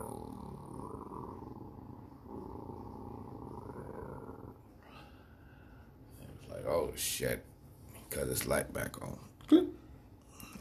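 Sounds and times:
low animal growling in a cave: 0.0 - 5.3
speech: 6.5 - 7.5, 8.1 - 9.6.

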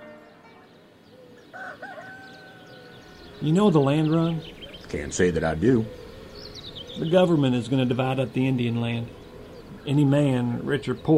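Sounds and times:
rooster crowing: 1.2 - 3.4
speech: 1.6 - 2.4, 3.4 - 6.0, 7.0 - 9.2, 9.8 - 11.1.

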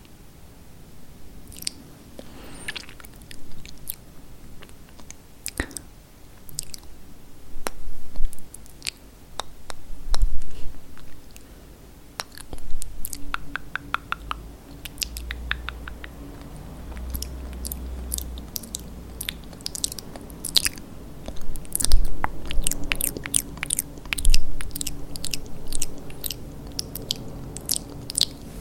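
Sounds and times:
low steady hum: 0.0 - 28.5
wet mouth sounds from lip gloss being applied: 1.4 - 4.0, 4.6 - 6.9, 12.2 - 28.5
small kisses: 1.5 - 4.0, 4.6 - 6.9, 7.6 - 11.5, 12.2 - 28.5.

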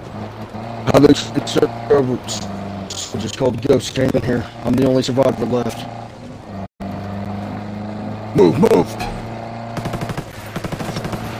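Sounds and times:
speech: 0.9 - 6.0, 8.4 - 9.1
automatic gunfire in a tactical shooter video game: 9.8 - 11.3.

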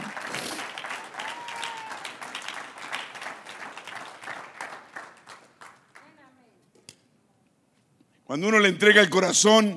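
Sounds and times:
audience applauding during a church service: 0.0 - 6.1
speech: 8.3 - 9.7.

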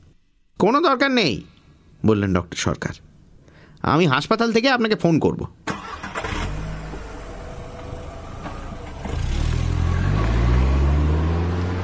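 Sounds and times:
speech: 0.6 - 3.1, 3.8 - 5.7
car engine idling: 5.7 - 11.8.

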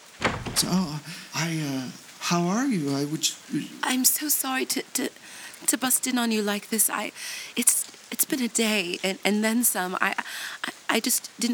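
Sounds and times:
knocking on the wooden door of a house: 0.2 - 0.9
speech: 0.6 - 11.5.

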